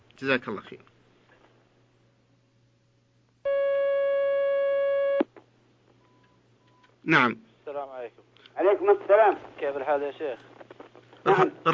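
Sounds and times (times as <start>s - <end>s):
speech: 0.2s - 1.0s, 7.0s - 10.5s, 11.2s - 11.7s
sustained electronic telephone line tone of an incoming call: 3.5s - 5.2s.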